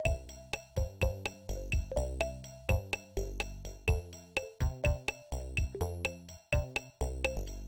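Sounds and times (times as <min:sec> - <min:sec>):
background music: 0:00.0 - 0:07.6.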